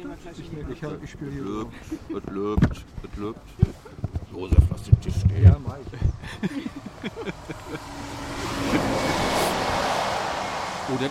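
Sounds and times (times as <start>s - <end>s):
speech: 0.1s - 8.8s, 10.9s - 11.1s
laughter: 6.0s - 9.6s
gust of wind: 7.5s - 10.9s.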